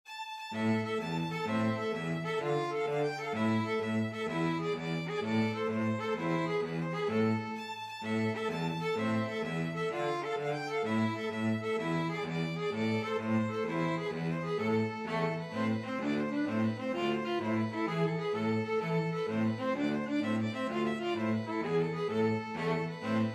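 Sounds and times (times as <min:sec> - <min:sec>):
two violins playing a tarantella: 0:00.1 - 0:23.3.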